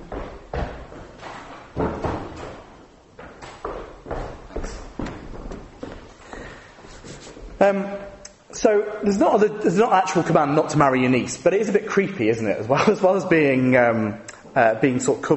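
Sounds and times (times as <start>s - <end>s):
banging noise: 0.0s - 6.1s
heavy footsteps thudding across a hard floor: 0.0s - 7.6s
speech: 7.6s - 8.0s, 8.6s - 15.3s.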